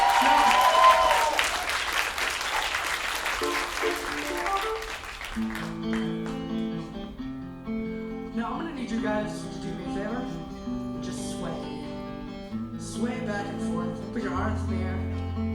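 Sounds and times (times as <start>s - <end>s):
crowd clapping and cheering: 0.0s - 6.8s
sustained keyboard chords: 3.4s - 15.5s.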